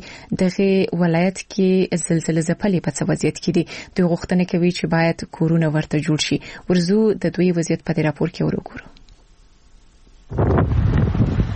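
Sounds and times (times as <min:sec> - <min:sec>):
speech: 0:00.3 - 0:09.0, 0:10.3 - 0:10.7
strong wind blowing across an earthquake survivors' tent camp in Herat: 0:10.3 - 0:11.5.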